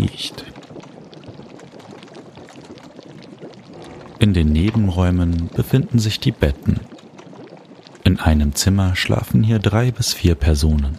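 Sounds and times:
thick stew bubbling and gurgling in a large cauldron over an open hearth fire: 0.0s - 10.9s
speech: 4.2s - 6.9s, 8.1s - 10.9s.

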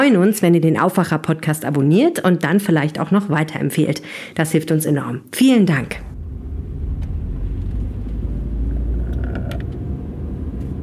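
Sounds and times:
speech: 0.0s - 6.1s
car driving on the road from Düsseldorf toward Neuss: 6.1s - 10.8s.

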